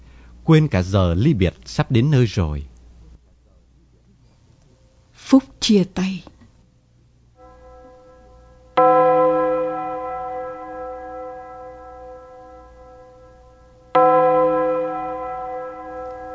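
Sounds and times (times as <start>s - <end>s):
speech: 0.5s - 2.7s, 5.3s - 6.3s
deep bronze church bell tolling for a farewell ceremony: 7.4s - 16.3s.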